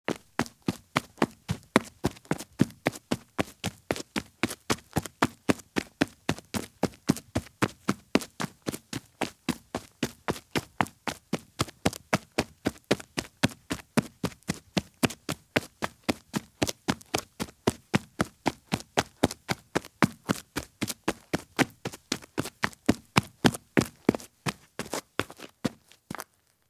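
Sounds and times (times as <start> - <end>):
women's high heel shoes running on dirt: 0.1 - 26.4.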